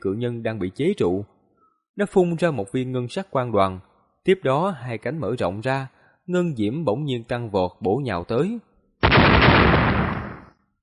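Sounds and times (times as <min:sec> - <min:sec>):
speech: 0:00.0 - 0:01.4, 0:02.0 - 0:09.4
heavy explosive blast of bursting silver lightning: 0:09.0 - 0:10.5.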